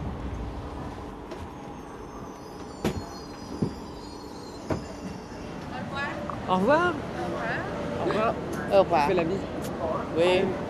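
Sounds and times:
train rolling into Bucharest North station: 0.0 - 8.5
speech: 6.5 - 7.1, 8.1 - 10.6.

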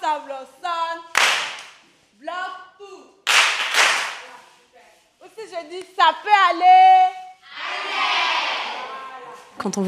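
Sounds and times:
speech: 0.2 - 1.1, 5.4 - 7.2, 9.6 - 9.8
group of teenage girls shouting together in warm-up: 7.5 - 9.4.

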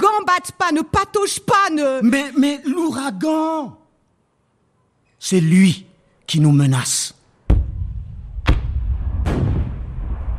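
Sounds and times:
speech: 0.2 - 3.8, 5.2 - 7.2
heavy cannon shots booming: 7.5 - 10.3.

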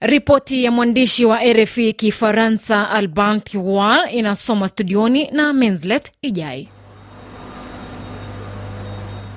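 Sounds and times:
speech: 0.0 - 6.8
fast-spinning engines in a geothermal power plant generator room at Olkaria: 6.7 - 9.3.

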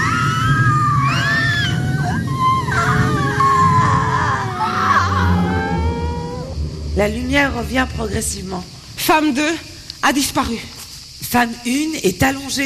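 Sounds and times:
overlapping screams: 0.0 - 6.7
wailing cries: 0.0 - 6.7
dense steady low rumble: 1.8 - 9.2
speech: 7.0 - 12.6.

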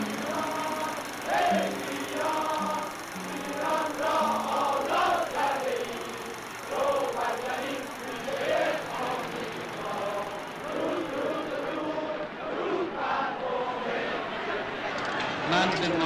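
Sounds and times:
large crowd cheering a triumphal arrival: 0.1 - 16.0.

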